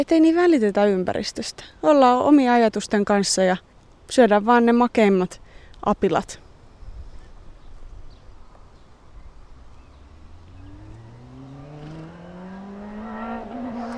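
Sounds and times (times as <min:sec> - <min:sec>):
speech: 0:00.0 - 0:06.4
low outdoor rumble: 0:00.0 - 0:13.9
motorcycle engine passing a fenced pasture: 0:09.8 - 0:13.9.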